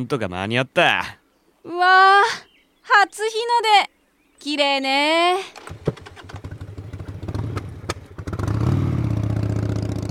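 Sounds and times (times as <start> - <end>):
speech: 0.0 - 5.6
motorcycle engine revving and accelerating toward Lake Kawaguchi: 5.6 - 10.0.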